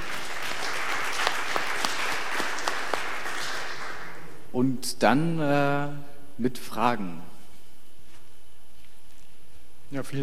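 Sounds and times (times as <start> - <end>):
audience applause: 0.0 - 4.4
sharp individual claps: 0.0 - 4.4
speech: 4.6 - 7.3, 9.9 - 10.2.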